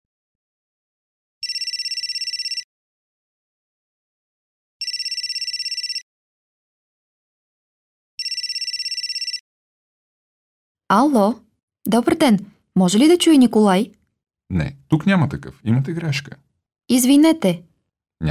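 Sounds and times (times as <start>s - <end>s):
telephone with bright electronic ringing: 1.4s - 2.7s, 4.8s - 6.1s, 8.2s - 9.4s
speech: 10.9s - 18.2s.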